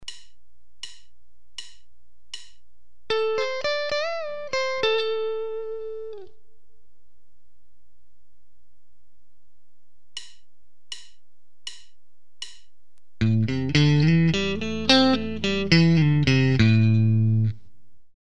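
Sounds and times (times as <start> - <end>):
Box IV guitar riff with triplet feel and Box V lick: 3.1 - 6.4, 13.2 - 17.6.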